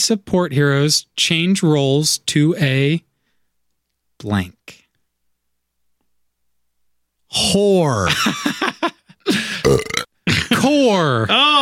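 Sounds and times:
speech: 0:00.0 - 0:03.1, 0:04.2 - 0:04.8, 0:07.3 - 0:09.4, 0:10.6 - 0:11.6
laughter: 0:08.1 - 0:09.4
belch sound effect with gulping hiccups: 0:09.4 - 0:10.1.

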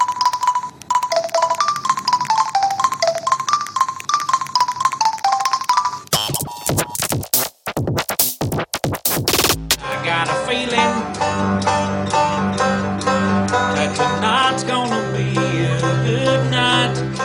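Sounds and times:
song melody of electronic keypad beeps on two mobile phones: 0:00.0 - 0:07.2
full instrumental music passage: 0:00.0 - 0:17.2.

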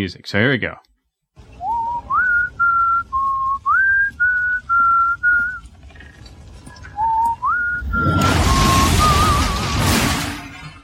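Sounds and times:
roaring crash of a house going up: 0:01.4 - 0:10.8
whistled tune: 0:01.5 - 0:05.7, 0:06.7 - 0:10.3.

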